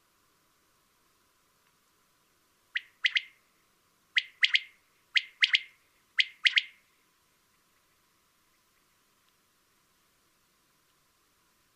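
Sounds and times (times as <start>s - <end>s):
common quail triple-note call: 2.8s - 3.4s, 4.2s - 6.8s.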